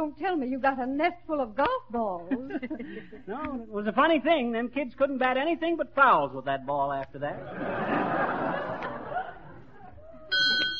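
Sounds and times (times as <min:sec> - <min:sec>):
speech: 0:00.0 - 0:08.7
people laughing: 0:02.3 - 0:03.4, 0:07.4 - 0:10.7
small bell ringing on egg-counting device: 0:10.3 - 0:10.7.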